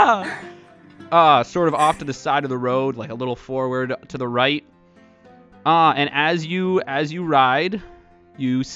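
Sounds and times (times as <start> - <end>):
person imitating wailing: 0.2 - 0.5, 1.8 - 2.2
speech: 1.1 - 4.8, 5.6 - 8.7.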